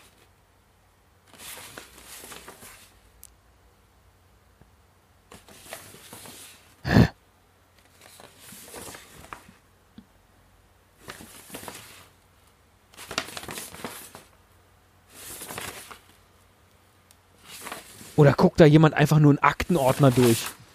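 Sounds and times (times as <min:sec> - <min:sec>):
paper folding map crackling as it is folded and unfolded: 0:01.2 - 0:03.1, 0:05.3 - 0:06.8, 0:07.8 - 0:09.6, 0:11.0 - 0:14.4, 0:15.1 - 0:16.3, 0:17.3 - 0:20.7
speech: 0:18.2 - 0:20.6.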